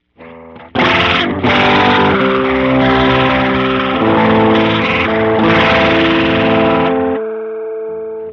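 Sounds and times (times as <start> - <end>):
horn with rotary modulation: 0.8 - 7.2.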